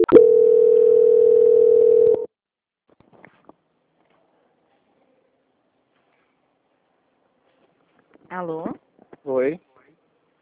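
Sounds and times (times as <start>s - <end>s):
telephone call transfer tone: 0.0s - 2.3s.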